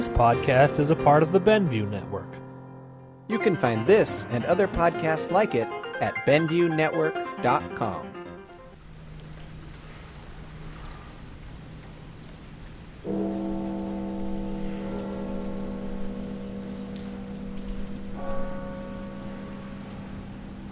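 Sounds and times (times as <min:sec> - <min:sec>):
speech: 0:00.0 - 0:02.4, 0:03.3 - 0:08.2
rain falling: 0:08.5 - 0:20.7.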